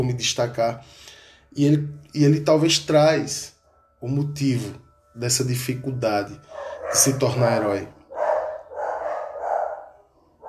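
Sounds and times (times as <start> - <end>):
speech: 0.0 - 8.0
neighborhood dog barking: 6.5 - 7.4, 8.1 - 10.4.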